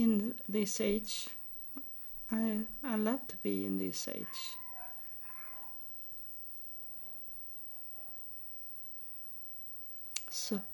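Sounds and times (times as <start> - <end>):
speech: 0.0 - 1.4, 2.3 - 4.6, 10.3 - 10.7
steady hiss: 0.0 - 10.7
dogs barking outside: 4.2 - 5.8.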